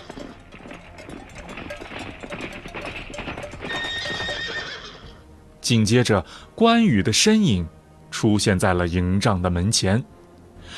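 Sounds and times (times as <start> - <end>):
war horses with bells approaching, rapid clip-clopping hoofbeats: 0.0 - 5.2
speech: 5.7 - 10.2.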